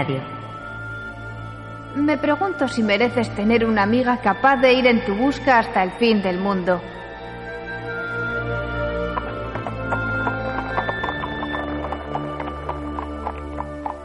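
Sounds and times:
speech: 0.0 - 0.3, 2.0 - 7.0
sustained musical drone: 0.0 - 14.0
horse galloping away: 8.3 - 14.0.

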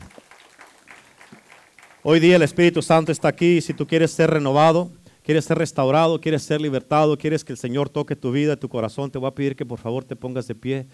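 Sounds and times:
crowd applauding during a church service: 0.0 - 4.4
speech: 2.0 - 10.9.

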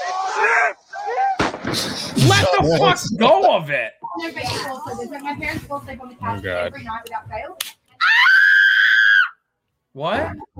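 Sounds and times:
speech: 0.4 - 0.8, 1.7 - 8.2, 10.0 - 10.5
person screaming: 8.0 - 9.3.

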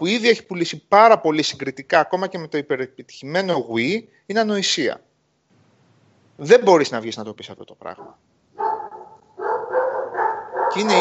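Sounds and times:
speech: 0.0 - 5.1, 6.4 - 8.7, 10.7 - 10.9
dog barking: 8.0 - 10.9.

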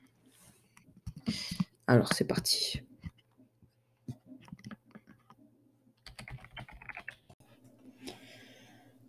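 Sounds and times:
speech: 1.3 - 2.9
typing on a mechanical gaming computer keyboard: 6.0 - 7.4.

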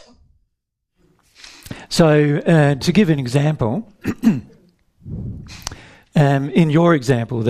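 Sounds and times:
speech: 1.9 - 5.6, 6.2 - 7.4
raspy hacking cough: 4.0 - 4.6.

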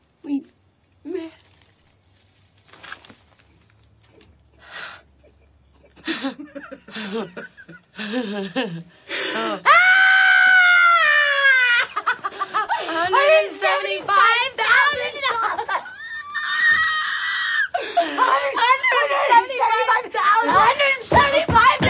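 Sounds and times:
laughter: 5.1 - 9.6, 11.1 - 17.0, 17.7 - 21.8
speech: 6.2 - 9.7
person mimicking women screaming excitedly: 9.6 - 12.0, 15.3 - 19.5.

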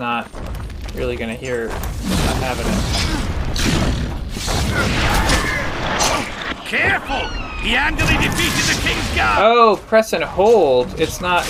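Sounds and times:
speech: 0.0 - 11.4
video game crackling bursts: 0.0 - 11.4
video game rumbling booms: 0.3 - 9.4
video game mage enemy magical blasts: 1.8 - 9.5.

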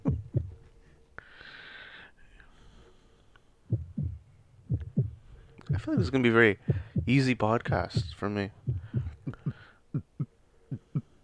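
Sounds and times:
heart beating: 0.0 - 0.7, 3.7 - 11.0
speech: 5.8 - 8.6.

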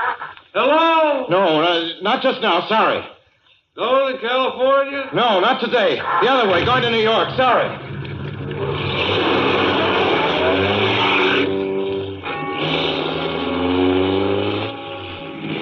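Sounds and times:
speech: 0.5 - 3.2, 3.8 - 7.8
car engine revving and accelerating: 6.6 - 15.6.

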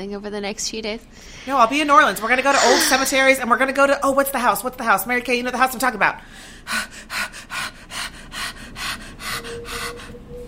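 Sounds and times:
speech: 0.0 - 7.2
rapid uneven breaths with gasping and snorting: 1.1 - 3.4, 6.2 - 10.3.

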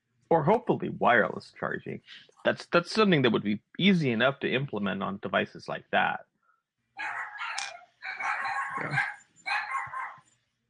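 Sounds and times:
speech: 0.3 - 6.3, 8.8 - 9.1
dogs barking in rapid overlapping yaps: 7.0 - 10.2.

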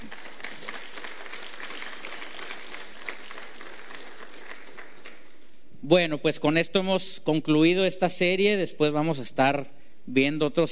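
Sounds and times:
large crowd applauding: 0.0 - 5.5
speech: 5.9 - 10.7.

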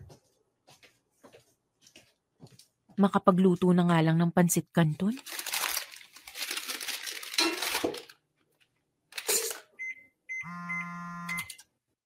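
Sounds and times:
speech: 3.0 - 5.4
phone ringtone for an incoming call: 9.8 - 11.6.

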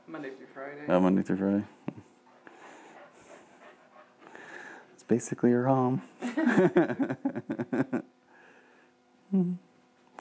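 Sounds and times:
speech: 0.1 - 1.9, 5.1 - 8.2, 9.3 - 9.7
dog panting: 2.3 - 5.0
laughter: 6.2 - 8.1.

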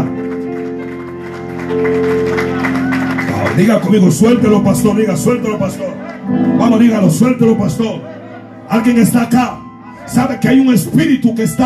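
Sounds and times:
audience applause: 0.0 - 4.2
sustained keyboard chords: 0.0 - 11.6
speech: 3.6 - 8.1, 8.7 - 11.6.

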